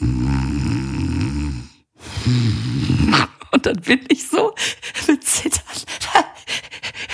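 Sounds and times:
voice imitating a man snoring in a pitch-dark lobby: 0.0 - 3.4
speech: 2.3 - 5.6.

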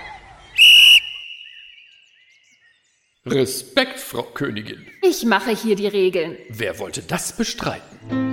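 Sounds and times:
small silver whistle blown in a shrill blast: 0.6 - 1.8
speech: 3.3 - 8.2.

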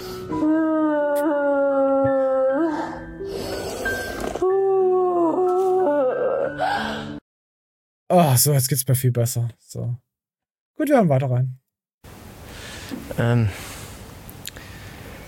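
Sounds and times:
person imitating a howl: 0.3 - 3.0, 4.4 - 7.1
speech: 8.1 - 10.1, 10.8 - 11.6, 13.2 - 13.7.

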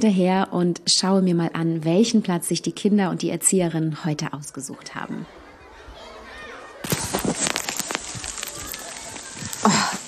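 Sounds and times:
speech: 0.0 - 5.4
light rain pattering in the woods: 6.2 - 10.0
small hail ticking in the woods: 6.9 - 10.0.

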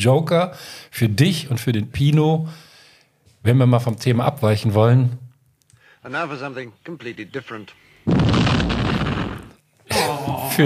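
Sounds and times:
speech: 0.0 - 2.7, 3.4 - 5.2, 6.0 - 8.7, 10.0 - 10.6
loud explosion sound effect: 8.1 - 9.6.

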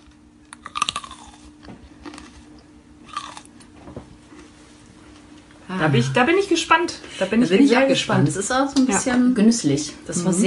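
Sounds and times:
crunchy biting and chewing of food right at the microphone: 0.0 - 3.8
speech: 5.7 - 10.4.

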